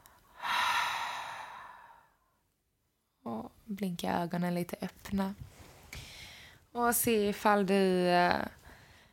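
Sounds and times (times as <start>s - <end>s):
slow exhale of breath: 0.0s - 2.2s, 5.9s - 6.6s
speech: 3.7s - 5.5s, 6.8s - 8.6s.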